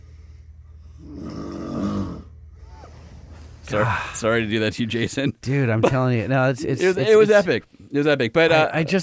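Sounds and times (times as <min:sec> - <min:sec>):
loud human snoring: 0:01.0 - 0:02.3
speech: 0:03.7 - 0:09.0.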